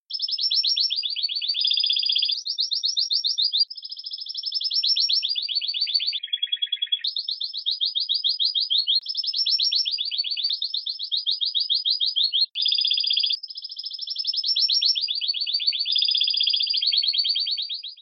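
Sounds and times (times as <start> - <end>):
Spanish timbrado canary singing beaten notes: 0.0 - 18.0.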